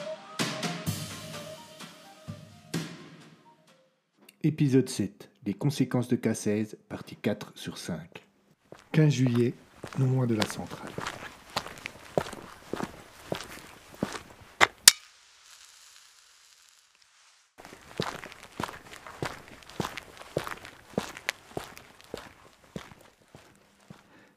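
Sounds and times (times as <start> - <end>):
speech: 4.4 - 8.2, 8.9 - 11.1
man's footsteps walking near a power plant: 8.6 - 15.0, 17.6 - 24.2
faint hiss of a man lighting a cigarette: 13.2 - 20.0.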